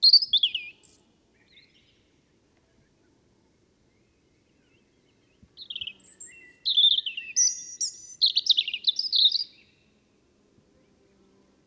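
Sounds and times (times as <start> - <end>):
European robin singing: 0.0 - 2.0, 3.9 - 9.9.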